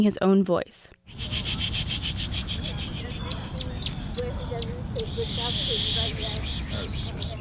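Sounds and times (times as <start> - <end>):
speech: 0.0 - 1.4, 5.2 - 7.2
bird calls played through a speaker: 1.2 - 7.3.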